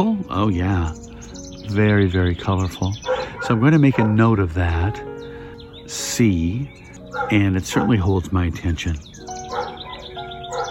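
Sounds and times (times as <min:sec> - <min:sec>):
speech: 0:00.0 - 0:01.1, 0:01.7 - 0:05.3, 0:05.9 - 0:09.2
bird tweeting outdoors in the late afternoon: 0:00.0 - 0:10.6.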